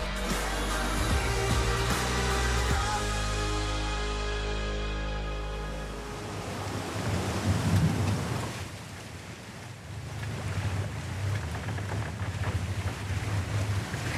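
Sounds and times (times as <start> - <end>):
low steady drone: 0.0 - 6.9
ocean waves at sea: 0.0 - 14.1
gusting wind at sea: 5.9 - 14.1.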